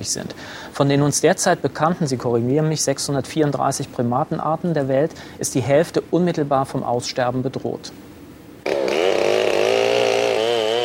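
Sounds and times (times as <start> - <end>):
speech: 0.0 - 8.0
chainsaw cutting trees: 8.6 - 10.8.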